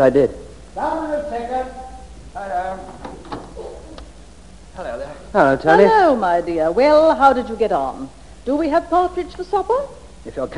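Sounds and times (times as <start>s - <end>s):
speech: 0.0s - 1.8s, 5.3s - 10.5s
back door creaking on its hinges: 2.8s - 4.0s
back door latch clicking and knocking: 3.0s - 3.6s.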